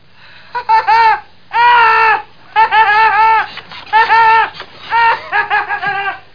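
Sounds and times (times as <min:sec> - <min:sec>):
person laughing: 0:00.6 - 0:06.3.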